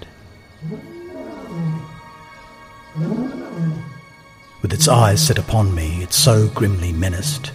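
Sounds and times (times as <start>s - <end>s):
speech: 0.6s - 1.0s, 4.6s - 7.5s
lion roaring: 0.6s - 2.1s, 2.9s - 4.1s, 4.7s - 5.5s.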